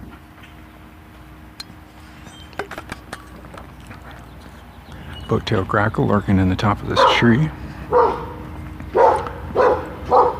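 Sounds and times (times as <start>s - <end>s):
low steady outdoor hum: 0.0s - 10.3s
speech: 5.3s - 8.1s
dog barking in backyard: 6.9s - 7.3s, 7.9s - 10.3s.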